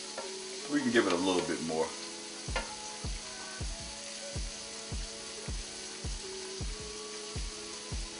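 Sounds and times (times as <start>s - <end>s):
smoked turkey sausage sizzling in a pan: 0.0s - 8.1s
speech: 0.7s - 2.7s
knocks on a pan: 2.5s - 2.8s.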